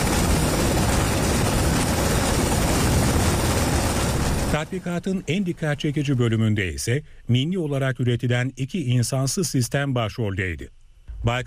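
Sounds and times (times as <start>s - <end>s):
helicopter engine and rotor noise during a Turkish military exercise: 0.0s - 5.4s
speech: 4.6s - 11.4s.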